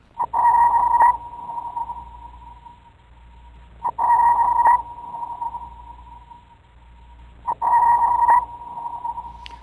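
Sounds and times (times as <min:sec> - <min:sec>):
ship sonar pings underwater: 0:00.2 - 0:02.9, 0:03.8 - 0:06.6, 0:07.4 - 0:09.6.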